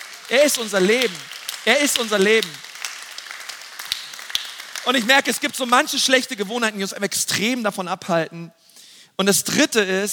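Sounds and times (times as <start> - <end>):
audience applause: 0.0 - 6.3
speech: 0.3 - 2.7, 4.8 - 8.6, 9.2 - 10.1.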